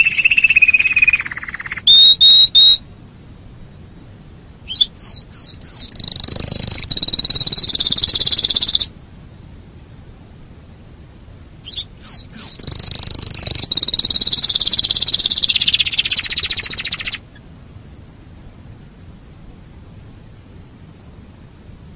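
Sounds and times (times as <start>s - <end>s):
canary singing a long high rolling trill: 0.0s - 2.9s, 3.7s - 8.9s, 11.6s - 17.5s.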